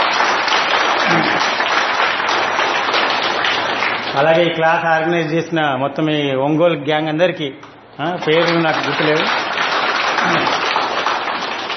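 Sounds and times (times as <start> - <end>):
audience at a class gathering clapping: 0.0 - 5.3, 8.2 - 11.7
speech: 4.2 - 9.4.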